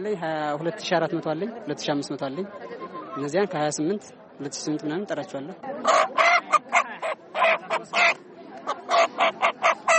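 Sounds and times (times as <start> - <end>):
speech: 0.0 - 6.1
chickens squawking at a poultry market: 5.8 - 9.9.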